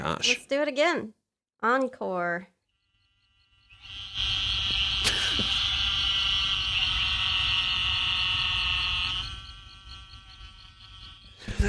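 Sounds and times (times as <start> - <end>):
speech: 0.0 - 2.5
chorus of trilling toads: 2.5 - 11.6.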